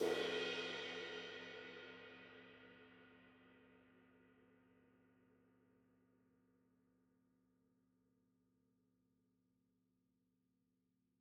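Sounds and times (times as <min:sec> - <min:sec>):
low crash cymbal: 0:00.0 - 0:02.8.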